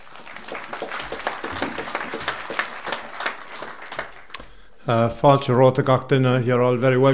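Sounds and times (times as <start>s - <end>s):
audience applause welcoming a speaker: 0.0s - 4.3s
speech: 4.9s - 7.1s.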